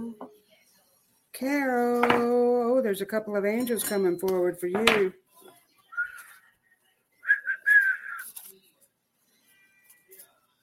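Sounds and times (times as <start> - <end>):
speech: 1.4 - 5.2
person whistling short notes: 6.0 - 6.3, 7.2 - 8.3.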